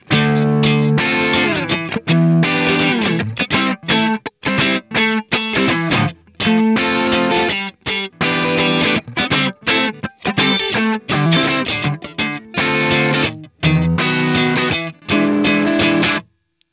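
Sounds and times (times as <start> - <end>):
dry groove guitars: 0.0 - 16.3.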